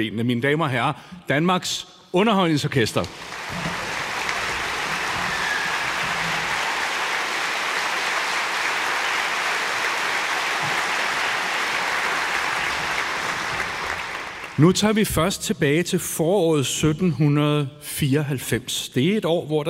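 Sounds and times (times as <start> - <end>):
speech: 0.0 - 3.8, 14.6 - 19.6
large concert audience applauding an orchestra: 3.0 - 14.8.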